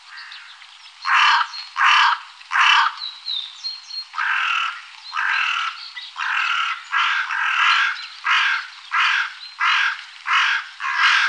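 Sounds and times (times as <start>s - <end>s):
carrion crow cawing: 1.1s - 3.0s, 4.2s - 11.2s.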